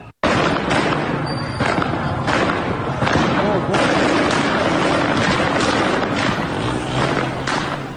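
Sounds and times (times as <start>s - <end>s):
gunfire at a street protest: 0.0s - 7.9s
crowd shouting on a street: 2.9s - 7.9s.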